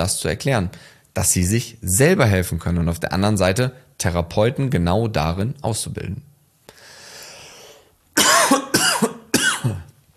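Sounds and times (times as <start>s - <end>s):
speech: 0.0s - 6.3s
harsh raspy coughs: 8.2s - 9.9s.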